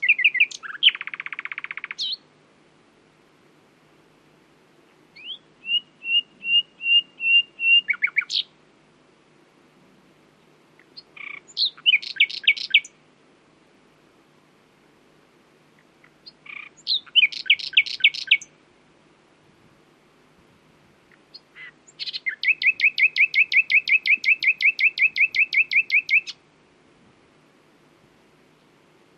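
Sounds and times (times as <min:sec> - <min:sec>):
common nightingale Luscinia megarhynchos singing: 0:00.0 - 0:02.3, 0:05.1 - 0:08.6, 0:10.4 - 0:13.0, 0:15.7 - 0:18.6, 0:21.1 - 0:26.4.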